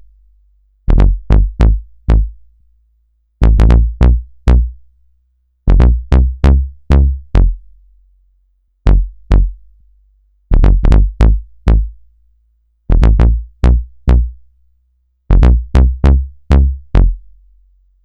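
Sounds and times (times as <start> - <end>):
synth bass loop in G: 0.9 - 2.4, 3.4 - 4.8, 5.7 - 7.6, 10.6 - 12.0, 12.9 - 14.4, 15.3 - 17.2.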